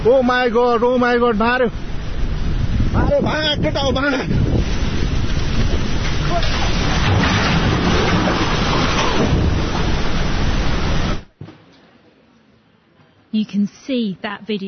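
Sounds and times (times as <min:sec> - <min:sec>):
speech: 0:00.0 - 0:01.9, 0:03.0 - 0:04.5, 0:06.4 - 0:06.7, 0:13.3 - 0:14.6
rushing floodwater surging between hillsides: 0:00.0 - 0:11.3.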